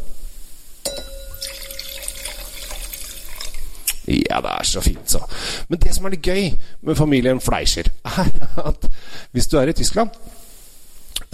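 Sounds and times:
glass clink: 0.8 - 3.8
wine pouring into a glass: 0.9 - 4.1
speech: 4.1 - 10.4.

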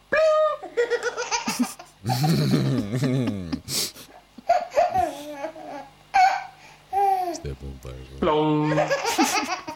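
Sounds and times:
baby laughing in squealing giggles: 0.4 - 2.8, 4.4 - 7.3, 8.7 - 9.7
adult with deeper voice laughing and making playful sounds: 0.8 - 5.3, 8.7 - 9.7
speech: 1.6 - 3.8.

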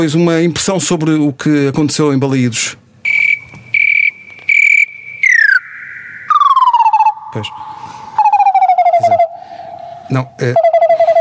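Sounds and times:
speech: 0.0 - 2.9, 7.4 - 7.6, 10.1 - 10.7
cricket chirping shrill and buzzy: 3.0 - 9.6.

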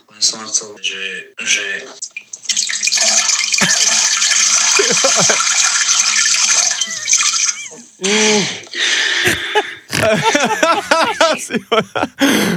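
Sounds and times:
speech: 0.2 - 2.2, 2.8 - 6.7, 8.0 - 9.1, 10.1 - 10.9, 11.5 - 12.5
toilet flushing with water rushing into the bowl: 2.4 - 9.1
laughter: 3.6 - 5.6, 9.2 - 12.5.

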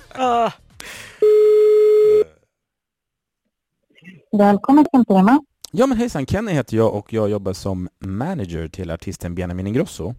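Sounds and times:
telephone ringback tone on a call to a hotel in Linköping: 1.2 - 2.2
speech: 4.4 - 10.1.

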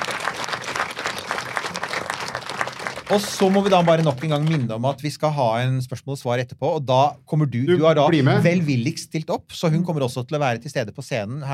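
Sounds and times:
audience applause at a stage event: 0.0 - 5.0
speech: 3.1 - 11.5.

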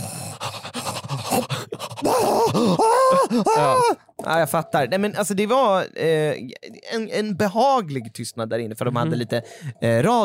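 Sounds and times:
person gasping for breath after holding their breath: 0.0 - 4.1
speech: 1.3 - 10.2.

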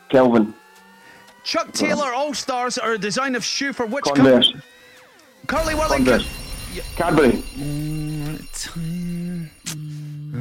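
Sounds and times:
speech: 0.1 - 0.6, 1.4 - 4.7, 5.4 - 10.0
loud harsh electronic quiz time-up buzzer: 2.9 - 10.2.

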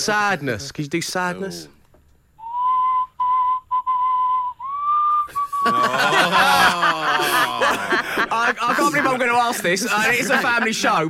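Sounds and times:
speech: 0.0 - 1.8, 7.4 - 11.0
person whistling a short bright tune: 2.4 - 5.8
loud laughter: 5.3 - 11.0
people chattering: 5.6 - 11.0.

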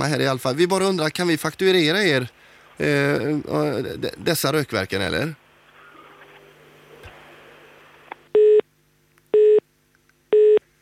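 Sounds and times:
speech: 0.0 - 5.4
faint noise: 0.0 - 10.8
telephone ringing tone on a call: 8.4 - 8.6, 9.4 - 9.6, 10.3 - 10.6.

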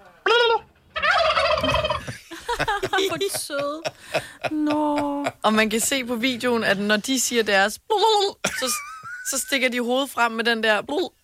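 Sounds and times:
turkeys gobbling: 0.2 - 2.2
laughter: 1.9 - 5.4
speech: 2.6 - 11.2.

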